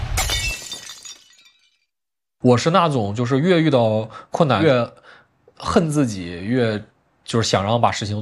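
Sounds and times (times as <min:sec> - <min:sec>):
turquoise inlay shattering under a hammer strike: 0:00.1 - 0:01.9
speech: 0:02.5 - 0:08.2.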